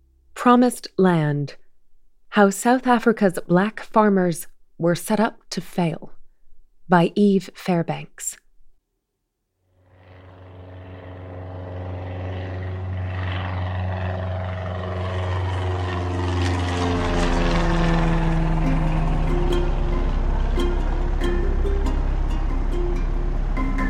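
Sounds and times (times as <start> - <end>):
speech: 0.4 - 1.6, 2.3 - 6.2, 6.9 - 8.4
small propeller plane droning: 9.6 - 23.8.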